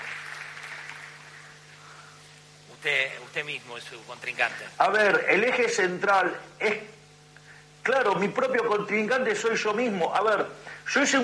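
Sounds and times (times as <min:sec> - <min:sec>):
audience applause for the president: 0:00.0 - 0:01.6
faint low hum: 0:00.0 - 0:11.2
speech: 0:02.8 - 0:06.9, 0:07.9 - 0:11.2.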